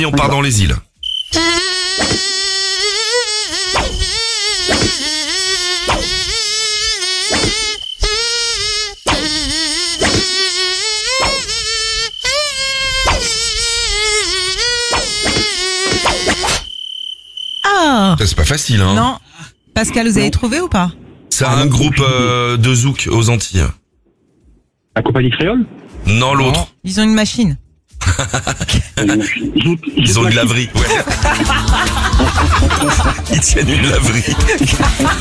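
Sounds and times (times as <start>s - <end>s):
speech: 0.0s - 2.3s, 18.2s - 19.2s, 19.8s - 23.8s, 25.0s - 35.1s
nasal voice imitating a tiger mosquito buzzing a bouncy song melody: 1.3s - 16.5s
laughter: 28.0s - 35.1s.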